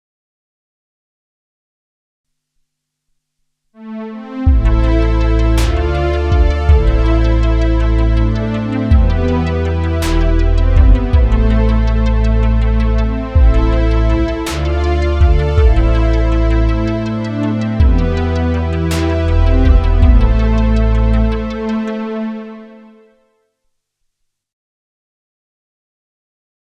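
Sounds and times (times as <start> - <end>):
Juno 106 synthesizer: 3.8 - 23.3.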